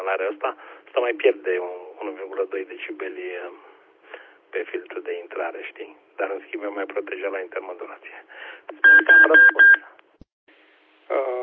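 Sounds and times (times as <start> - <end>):
faint static: 0.0 - 11.4
speech: 0.1 - 3.7, 4.5 - 9.6
radio timer electronic beeps: 8.7 - 9.8.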